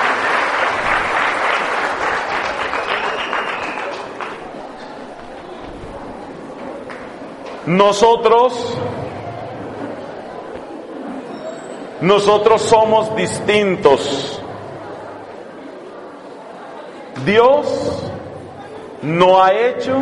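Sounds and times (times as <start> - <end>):
audience applause for the couples: 0.0 - 7.6
speech: 7.7 - 9.0, 12.0 - 14.4, 17.2 - 18.0, 19.0 - 20.0.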